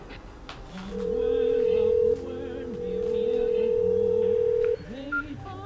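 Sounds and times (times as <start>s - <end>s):
telephone dialing tone: 0.8s - 5.3s.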